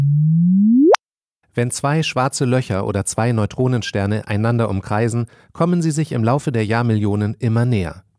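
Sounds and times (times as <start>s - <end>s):
gravitational-wave signal converted into audible frequencies rising into a high whoop: 0.1s - 1.0s
speech: 1.6s - 8.0s.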